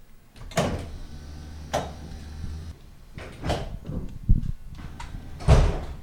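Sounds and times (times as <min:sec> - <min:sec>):
low mechanical hum: 0:00.1 - 0:06.0
heavy cable car sliding doors thudding shut: 0:00.4 - 0:04.1, 0:04.8 - 0:06.0.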